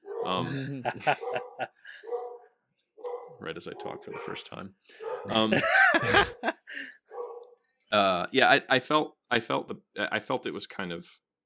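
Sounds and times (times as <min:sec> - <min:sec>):
dog barking and yelping: 0:00.0 - 0:00.4, 0:01.0 - 0:04.4, 0:05.0 - 0:05.5, 0:07.1 - 0:07.6
speech: 0:00.2 - 0:02.0, 0:03.4 - 0:07.0, 0:07.9 - 0:11.2
laughter: 0:00.3 - 0:02.0, 0:05.3 - 0:06.9.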